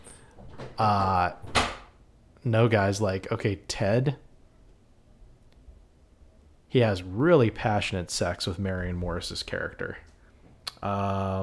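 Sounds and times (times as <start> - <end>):
door creaking: 0.0 - 2.0
speech: 0.8 - 1.5, 2.4 - 4.3, 6.7 - 10.1, 10.8 - 11.4
door slamming shut: 1.4 - 2.0.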